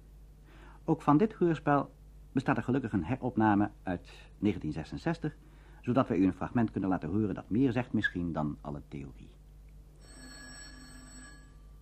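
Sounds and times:
speech: 0.9s - 9.4s
telephone ringing in a hospital ward: 10.0s - 11.8s.

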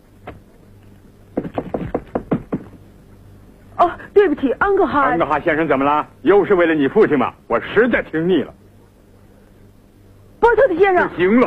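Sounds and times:
faint low hum: 0.0s - 11.4s
knocking on a door: 1.4s - 2.8s
speech: 3.8s - 8.6s, 10.6s - 11.4s.

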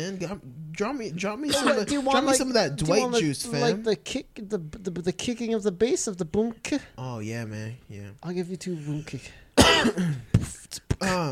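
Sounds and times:
speech: 0.0s - 11.3s
person clearing throat of phlegm: 1.5s - 2.1s, 9.6s - 10.6s
person coughing with phlegmy rasps: 1.5s - 2.2s, 9.6s - 10.4s.

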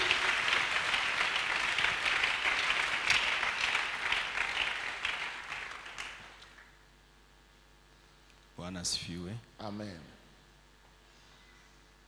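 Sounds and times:
congregation applauding at a church service: 0.0s - 6.7s
speech: 8.7s - 10.2s.

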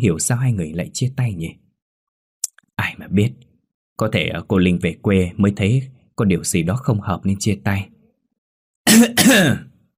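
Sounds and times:
speech: 0.0s - 1.7s, 2.8s - 8.0s, 8.8s - 9.7s
older woman clearing her throat with a sharp cough: 8.9s - 9.7s.

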